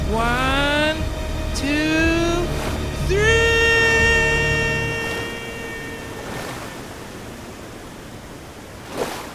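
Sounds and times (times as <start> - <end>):
brief whooshing tone: 0.0 - 7.2
rushing waterfall: 0.0 - 9.3
speech: 0.1 - 0.5, 1.6 - 2.0
sharp splash into water: 8.8 - 9.3.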